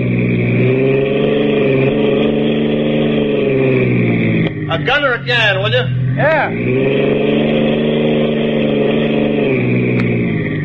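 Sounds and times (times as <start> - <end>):
car engine running after a tune-up: 0.0 - 10.6
speech: 4.8 - 8.0.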